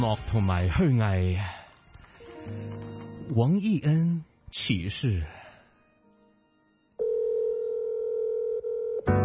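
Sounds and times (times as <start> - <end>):
speech: 0.0 - 1.6, 2.4 - 5.4
telephone dial tone: 7.0 - 9.1.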